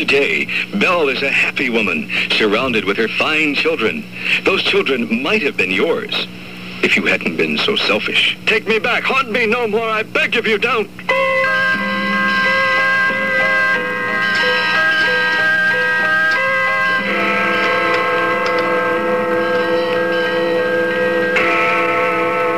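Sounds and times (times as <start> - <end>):
speech: 0.0 - 11.2
steeple clock bell striking on Christmas Day: 11.1 - 22.5.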